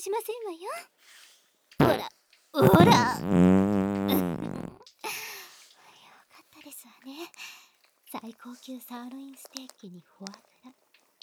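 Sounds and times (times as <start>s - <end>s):
speech: 0.0s - 3.5s, 6.6s - 10.8s
fart: 1.8s - 4.8s.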